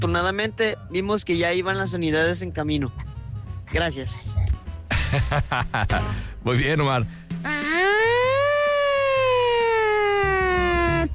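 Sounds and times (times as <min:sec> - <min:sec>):
speech: 0:00.0 - 0:03.1, 0:03.7 - 0:04.4, 0:05.1 - 0:07.6
laughter: 0:04.9 - 0:06.0
voice imitating a siren: 0:07.5 - 0:11.1.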